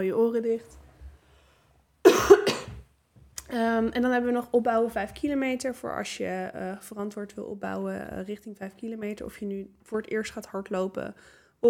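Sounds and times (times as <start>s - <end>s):
speech: 0.0s - 0.8s, 3.5s - 11.6s
quick harsh dry coughs: 2.0s - 2.8s.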